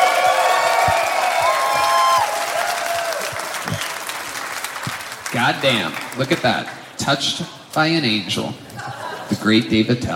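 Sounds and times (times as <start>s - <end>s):
audience whooping and shouting at a live stand-up comedy festival in Las Vegas: 0.0s - 4.4s
audience clapping for a comedian at a live stand-up comedy festival in Las Vegas: 0.0s - 7.0s
speech: 5.4s - 8.6s, 9.3s - 10.1s
laughter: 8.7s - 9.6s.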